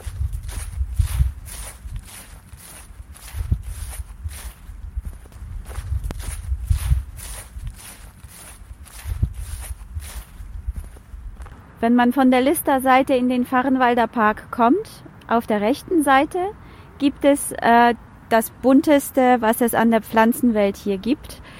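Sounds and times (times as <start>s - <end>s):
footsteps walking through a park in December: 0.0s - 11.7s
speech: 11.8s - 21.4s.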